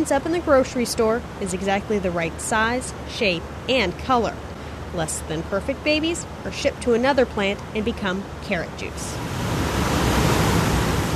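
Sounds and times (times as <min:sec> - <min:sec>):
speech: 0:00.0 - 0:09.5
water rushing through stainless steel canals in a carrot-processing plant: 0:00.0 - 0:11.1.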